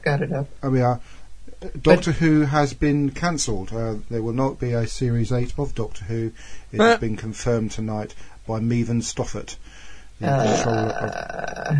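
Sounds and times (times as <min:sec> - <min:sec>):
speech: 0:00.1 - 0:11.7
long drawn-out human burp: 0:10.2 - 0:11.7.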